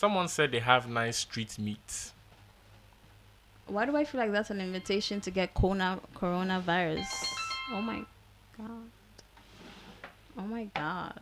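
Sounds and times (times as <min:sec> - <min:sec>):
speech: 0:00.0 - 0:02.2, 0:03.7 - 0:09.0, 0:10.4 - 0:11.2
mobile phone notification electronic blips: 0:07.0 - 0:08.1.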